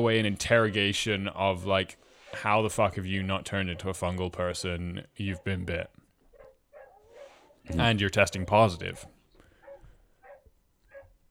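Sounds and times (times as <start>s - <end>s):
speech: 0.0s - 6.0s, 7.7s - 9.1s
dog barking: 3.7s - 5.6s, 6.3s - 11.2s.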